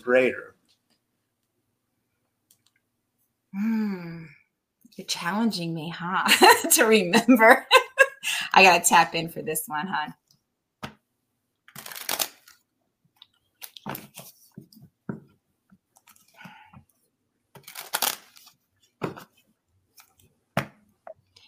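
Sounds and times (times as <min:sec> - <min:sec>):
speech: 0:00.0 - 0:00.5, 0:03.6 - 0:04.3, 0:05.0 - 0:10.2
tarot cards being shuffled: 0:11.7 - 0:12.6, 0:13.6 - 0:14.8, 0:17.5 - 0:20.8.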